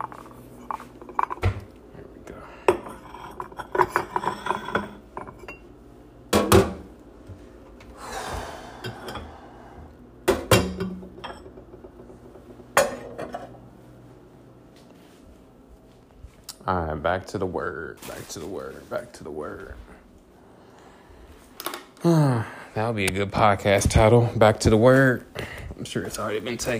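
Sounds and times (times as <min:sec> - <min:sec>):
ceramic bowls, mug and saucer plate clinking and knocking together: 0:00.0 - 0:01.6, 0:02.7 - 0:05.7, 0:10.3 - 0:11.7
dishes handling noise: 0:00.0 - 0:01.8, 0:02.6 - 0:06.9, 0:10.2 - 0:13.6
speech: 0:16.7 - 0:20.0, 0:22.0 - 0:26.7.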